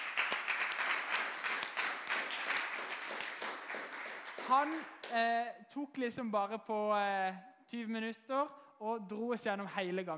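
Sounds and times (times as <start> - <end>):
crowd applauding: 0.0 - 5.1
speech: 4.5 - 10.1.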